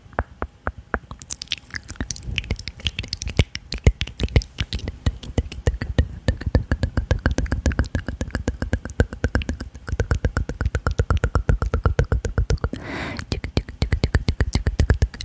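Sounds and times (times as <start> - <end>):
faint hum: 0.0 - 15.2
close-up wet mouth clicks and smacks: 1.0 - 15.2
hissy breath or whisper: 12.7 - 13.3.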